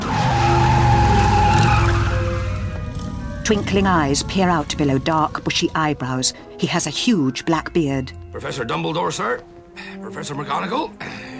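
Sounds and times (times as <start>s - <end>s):
motorcycle roaring: 0.0s - 6.4s
motorcycle tires screeching in a skid: 0.0s - 6.4s
speech: 3.5s - 11.3s.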